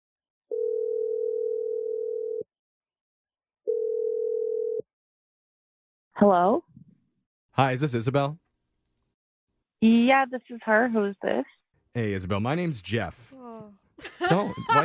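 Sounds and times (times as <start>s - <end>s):
telephone dial tone: 0.5s - 2.5s, 3.7s - 4.8s
speech: 6.2s - 6.7s, 7.6s - 8.4s, 9.8s - 14.8s
laughter: 14.0s - 14.8s.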